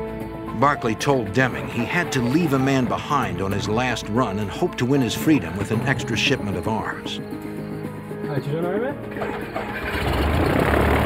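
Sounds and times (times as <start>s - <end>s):
speech: 0.6s - 7.4s, 8.4s - 10.6s
airplane engine starting up and roaring on runway: 9.1s - 11.0s.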